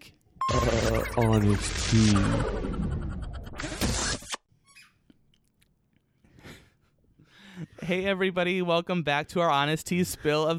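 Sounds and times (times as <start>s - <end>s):
speech: 0.9s - 3.0s, 7.9s - 10.5s
toy squeak: 4.6s - 5.0s.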